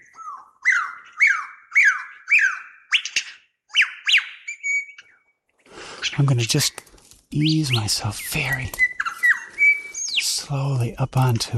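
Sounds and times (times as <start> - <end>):
ground bird shrieking alarm calls: 0.0 - 5.1, 7.6 - 10.3
speech: 6.1 - 8.8, 10.5 - 11.5.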